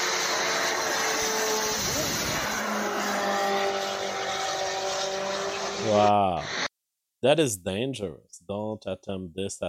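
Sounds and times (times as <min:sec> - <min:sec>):
jetpack jet engine roar over a Belgian F1 race track: 0:00.0 - 0:06.7
speech: 0:05.9 - 0:09.6.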